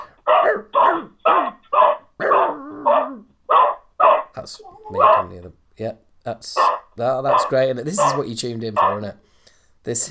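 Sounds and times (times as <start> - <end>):
dog barking: 0.0 - 5.5, 6.5 - 9.1
speech: 4.5 - 10.0.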